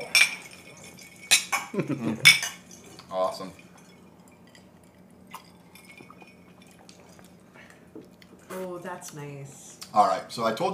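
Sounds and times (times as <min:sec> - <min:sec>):
glasses clinking together in a toast around a table: 0:00.0 - 0:07.3
speech: 0:01.7 - 0:02.4, 0:03.1 - 0:03.6, 0:08.6 - 0:10.7.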